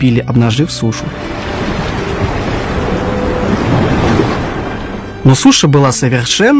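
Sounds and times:
speech: 0:00.0 - 0:01.6, 0:05.2 - 0:06.5
waves washing onto a sandy shore: 0:01.1 - 0:05.1
blustery wind buffeting the microphone: 0:01.2 - 0:05.1.

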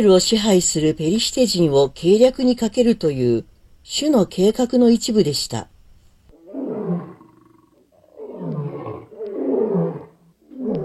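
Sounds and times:
speech: 0:00.0 - 0:05.7
young lion roaring: 0:06.3 - 0:10.8.

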